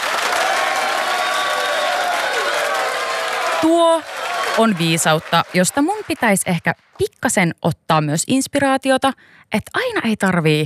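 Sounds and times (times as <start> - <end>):
faint cheers: 0.0 - 5.9
applause from a small group: 0.0 - 7.0
speech: 3.6 - 10.6.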